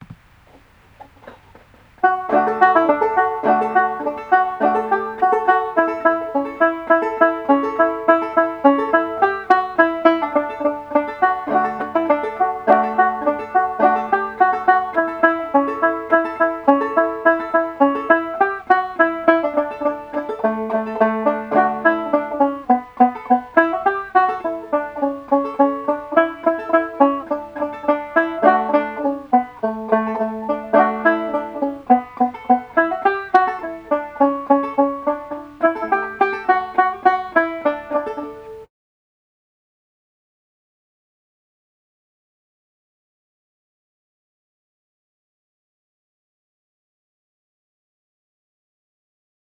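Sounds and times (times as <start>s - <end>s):
banjo tune in D: 0.0s - 38.7s.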